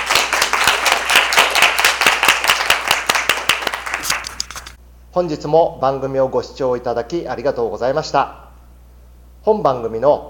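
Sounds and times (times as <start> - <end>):
group clapping: 0.0 - 4.2
speech: 5.2 - 8.4, 9.4 - 10.2.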